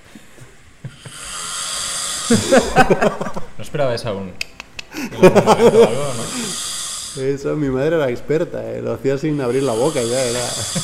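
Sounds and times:
person snoring: 0.9 - 2.8, 5.6 - 7.3, 9.4 - 10.8
laughter: 2.3 - 3.6, 4.9 - 6.6, 10.1 - 10.8
speech: 2.3 - 6.6, 7.2 - 10.8.

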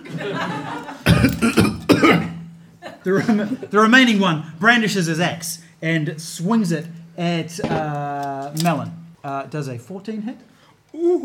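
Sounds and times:
laughter: 0.0 - 1.4, 2.8 - 3.7
voice imitating rough coughs: 1.1 - 2.4
speech: 3.0 - 11.2
murmured lead-in voice: 10.9 - 11.2.

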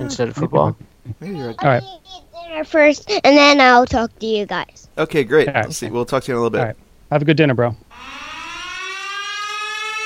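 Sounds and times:
speech: 0.0 - 8.2
siren wailing through the pines in the woods: 7.9 - 10.0.

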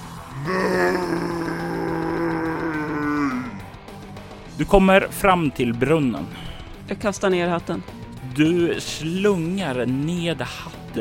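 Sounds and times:
person's voice imitating a monster's roar: 0.3 - 3.8
speech: 4.6 - 10.9.

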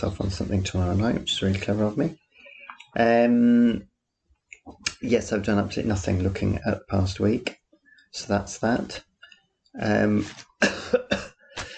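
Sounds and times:
speech: 0.0 - 2.2, 2.9 - 3.9, 4.7 - 9.1, 9.8 - 11.3
person coughing hoarsely: 10.6 - 11.7.

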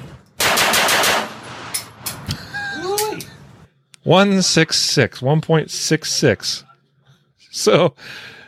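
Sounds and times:
handgun shots fired after drawing from a holster: 0.4 - 2.2
speech: 4.1 - 6.7, 7.5 - 8.4.

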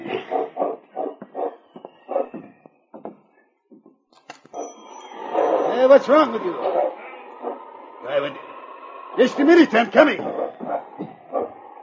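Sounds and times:
dog barking: 0.0 - 2.5, 4.6 - 7.7, 10.0 - 11.8
speech: 5.8 - 8.4, 9.1 - 10.4.

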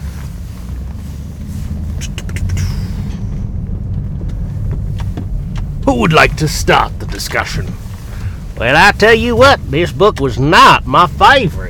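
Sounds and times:
car engine rumbling as the vehicle pulls away: 0.0 - 11.6
sharp clicks and squeaks: 1.7 - 8.8
speech: 5.9 - 7.8, 8.6 - 11.6.

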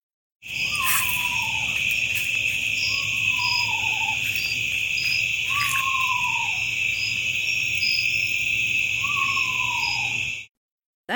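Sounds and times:
loud chorus of night insects: 0.4 - 10.5
eastern screech owl giving descending wavering whinnies: 0.6 - 1.8, 2.8 - 4.4, 5.4 - 6.7, 9.0 - 10.3.

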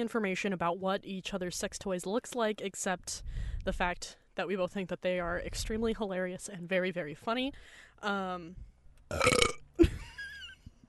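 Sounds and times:
speech: 0.0 - 9.6
loud drawn-out burp and gravelly belch: 9.1 - 9.7.

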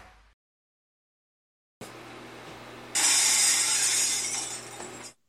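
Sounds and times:
glass shattering in a loud crash: 3.0 - 5.2.

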